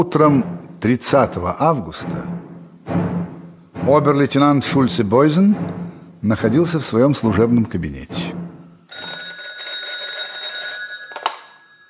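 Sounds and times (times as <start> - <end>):
speech: 0.0 - 2.4, 3.9 - 8.4
old-style telephone bell ringing in an office: 8.9 - 11.8.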